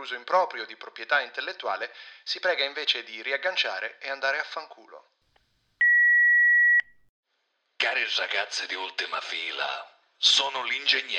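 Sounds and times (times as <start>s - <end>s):
speech: 0.0s - 5.2s, 7.8s - 11.1s
answering machine beep: 5.8s - 7.1s.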